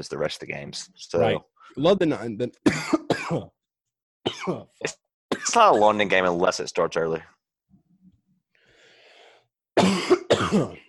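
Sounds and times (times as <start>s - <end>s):
speech: 0.0s - 3.6s, 4.2s - 7.4s, 10.5s - 10.8s
person coughing hard: 2.7s - 3.6s, 4.3s - 5.9s, 9.8s - 10.8s.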